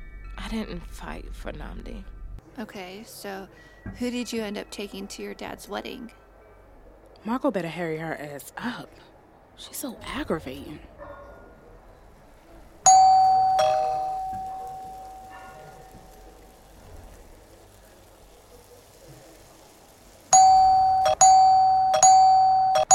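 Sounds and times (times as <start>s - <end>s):
speech: 0.5s - 6.2s, 7.2s - 10.9s
doorbell ringing: 12.9s - 15.4s, 20.4s - 22.9s.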